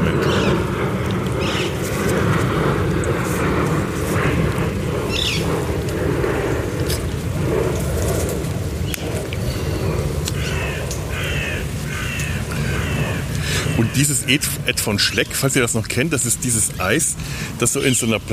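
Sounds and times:
harsh crow-like caws: 0:00.0 - 0:00.8, 0:01.4 - 0:01.8, 0:05.1 - 0:05.5, 0:09.4 - 0:14.5
birds calling and chirping: 0:00.0 - 0:06.1, 0:08.7 - 0:18.3
airplane passing overhead: 0:00.0 - 0:18.3
speech: 0:14.0 - 0:18.3.

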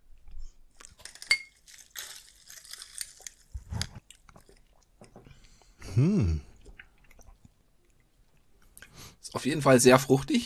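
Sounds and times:
glasses clinking in a toast: 0:01.3 - 0:01.6
person humming: 0:05.8 - 0:06.5
speech: 0:06.0 - 0:06.5, 0:09.3 - 0:10.4.

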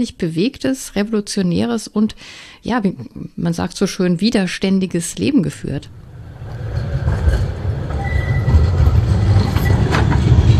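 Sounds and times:
speech: 0:00.0 - 0:06.1
tram rumbling along rails travelling uphill from the city centre to Gerresheim: 0:05.9 - 0:10.5
faint metallic squeals and clicks of tram: 0:07.9 - 0:10.3.

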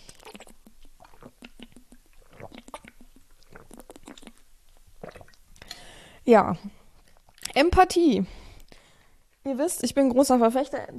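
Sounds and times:
swallowing: 0:00.0 - 0:04.4, 0:05.0 - 0:05.9
wet mouth clicks and smacks: 0:00.0 - 0:05.8
person sipping a drink on a hot day: 0:00.0 - 0:06.0
speech: 0:06.3 - 0:06.8, 0:07.6 - 0:08.4, 0:09.5 - 0:10.9.

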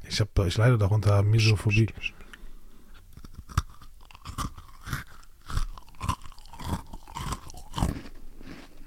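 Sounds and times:
speech: 0:00.1 - 0:02.2
softer chewing and grinding of chocolate biscuit: 0:02.9 - 0:08.8
crunchy chocolate biscuit being eaten: 0:03.0 - 0:08.8.

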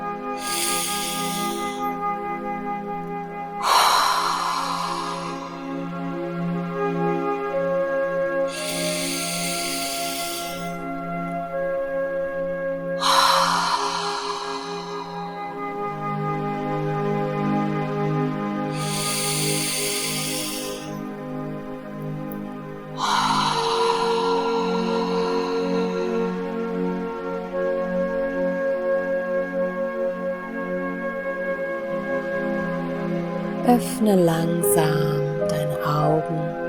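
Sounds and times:
deep breaths in through the nose and out through the mouth: 0:00.0 - 0:02.3, 0:03.6 - 0:06.7, 0:08.4 - 0:11.6, 0:13.0 - 0:16.7, 0:18.7 - 0:21.6, 0:22.3 - 0:27.6
quiet music: 0:00.0 - 0:36.6
speech: 0:33.8 - 0:35.0.

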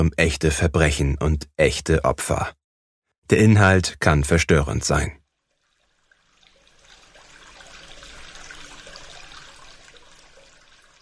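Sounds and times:
speech: 0:00.0 - 0:02.6, 0:03.3 - 0:05.2
water running from a tap: 0:05.5 - 0:11.0.

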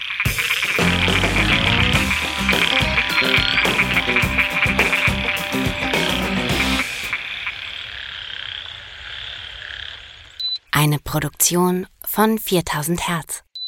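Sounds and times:
chorus of frogs croaking: 0:00.0 - 0:10.8
speech: 0:11.1 - 0:13.4.

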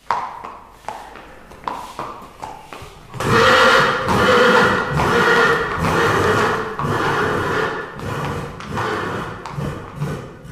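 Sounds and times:
sharp hoof knocks of Lipizzaner horses in a stable: 0:00.0 - 0:10.5
Lipizzaner horses snorting in a stable: 0:00.1 - 0:10.5
Lipizzaner horses whinnying in a stable: 0:03.0 - 0:10.5.

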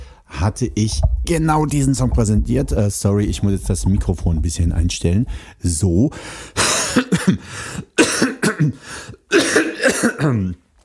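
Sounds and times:
speech: 0:00.4 - 0:07.8, 0:08.6 - 0:10.6
person coughing: 0:06.6 - 0:10.6
throat clearing: 0:08.0 - 0:10.5.

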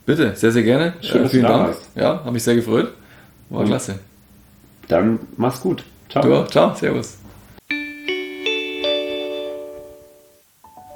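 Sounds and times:
speech: 0:00.1 - 0:04.1, 0:04.9 - 0:07.3
gong-like chime marking the end of the hour: 0:07.7 - 0:10.4.

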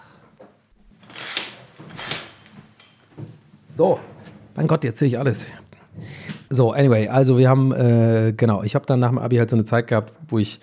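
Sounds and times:
curtain fabric sliding along its rail being pulled further open: 0:01.0 - 0:02.5
speech: 0:03.8 - 0:10.6.

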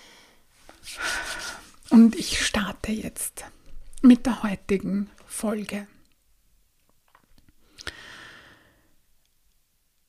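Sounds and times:
soft sniff: 0:00.0 - 0:01.9
speech: 0:02.0 - 0:06.0
deep breath in: 0:07.8 - 0:09.0.

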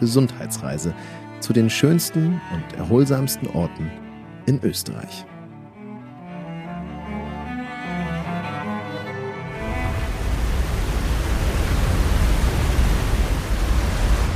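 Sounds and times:
speech: 0:00.0 - 0:05.3
soft tonal music: 0:00.0 - 0:11.0
loud steady roar of a waterfall: 0:09.6 - 0:14.3.

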